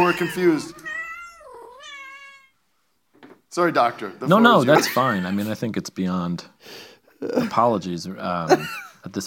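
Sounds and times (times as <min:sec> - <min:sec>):
man imitating cat meow: 0:00.0 - 0:01.3
speech: 0:00.1 - 0:00.9, 0:03.5 - 0:09.2.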